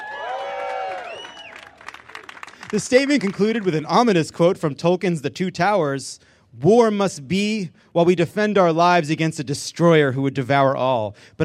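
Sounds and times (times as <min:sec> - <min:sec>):
studio audience whooping and cheering: 0:00.0 - 0:03.7
scattered claps from a studio audience: 0:00.2 - 0:03.9
speech: 0:02.7 - 0:11.4.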